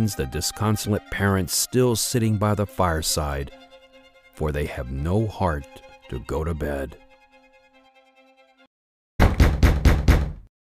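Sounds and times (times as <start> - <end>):
speech: 0.0 - 3.6, 4.4 - 7.0
firm knocks on a wooden door at midnight: 9.2 - 10.5.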